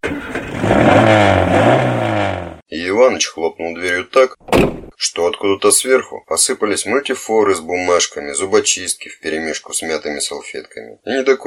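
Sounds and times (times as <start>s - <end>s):
car engine starting and revving: 0.0s - 2.6s
speech: 3.0s - 11.4s.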